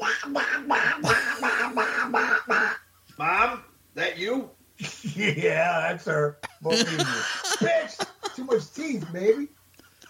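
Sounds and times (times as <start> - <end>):
woman doing raspy buzzing cartoon-duck voice imitation: 0.0 - 2.8
speech: 0.2 - 1.1, 5.2 - 7.8
laughter: 0.6 - 2.7, 6.4 - 9.5.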